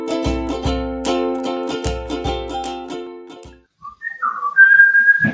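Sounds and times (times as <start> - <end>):
upbeat music with steady thumping beats: 0.2 - 2.8
person whistling a sliding tone: 3.8 - 5.3.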